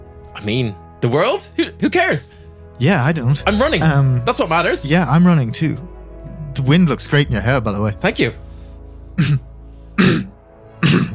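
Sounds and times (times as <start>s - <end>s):
speech: 0.4s - 5.9s, 6.6s - 8.4s, 9.2s - 9.4s
person coughing: 9.2s - 11.1s.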